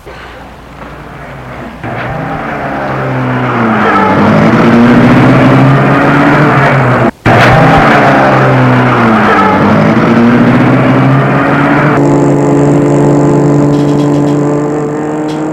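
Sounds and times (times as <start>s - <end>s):
car engine starting: 0.1s - 15.5s.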